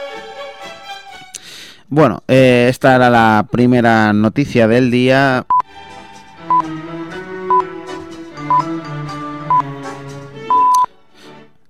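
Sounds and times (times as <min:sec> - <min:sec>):
speech: 0:01.9 - 0:05.5
radio half-hourly time signal pips: 0:10.5 - 0:10.9.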